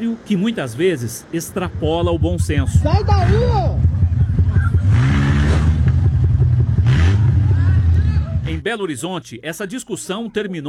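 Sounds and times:
speech: 0.0s - 3.9s, 8.6s - 10.6s
motorcycles idling: 1.4s - 5.1s, 5.8s - 8.6s
red car engine revving and accelerating: 1.7s - 8.6s.

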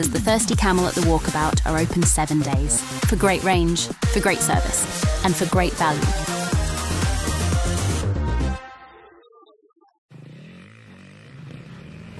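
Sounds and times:
speech: 0.0s - 6.4s
steady music bed: 0.0s - 9.2s
motocross motorcycle engine revving: 10.1s - 12.1s.

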